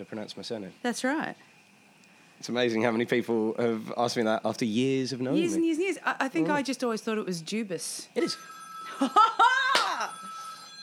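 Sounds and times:
speech: 0:00.0 - 0:01.6, 0:02.4 - 0:09.5
mobile phone ringing with a short bright melodic ringtone: 0:08.2 - 0:10.8.

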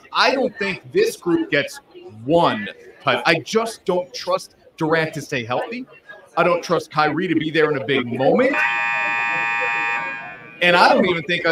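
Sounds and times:
speech: 0:00.2 - 0:08.9, 0:10.6 - 0:11.4
loud harsh electronic buzzer ending a speaking segment: 0:08.4 - 0:11.0.

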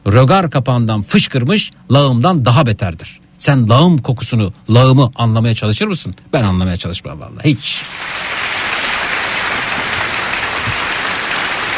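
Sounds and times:
speech: 0:00.0 - 0:08.4
crowd applause: 0:07.8 - 0:11.7.

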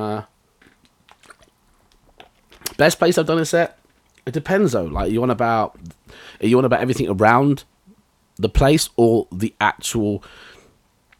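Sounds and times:
person sipping water with slurping and wet mouth clicks: 0:00.6 - 0:02.8
speech: 0:02.8 - 0:07.7, 0:08.4 - 0:10.5.

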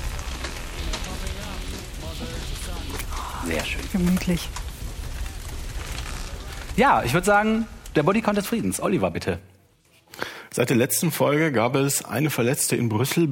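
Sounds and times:
fire crackling and popping in a fireplace: 0:00.0 - 0:09.6
speech: 0:03.5 - 0:04.6, 0:06.8 - 0:09.5, 0:10.6 - 0:13.3.

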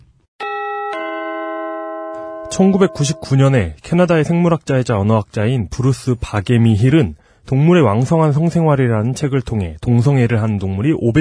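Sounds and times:
bright two-note ding chime: 0:00.4 - 0:03.6
speech: 0:02.5 - 0:11.1.

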